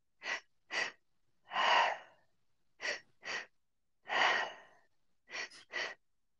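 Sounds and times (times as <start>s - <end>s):
two quick inhales through an open mouth into belly and chest: 0.2s - 2.2s, 2.8s - 3.5s, 4.1s - 6.0s.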